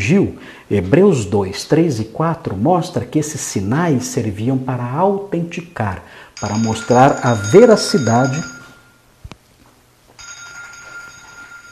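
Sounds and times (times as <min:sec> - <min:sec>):
speech: 0:00.1 - 0:08.6
telephone ringing with a high electronic tone: 0:06.4 - 0:09.0, 0:10.2 - 0:11.7.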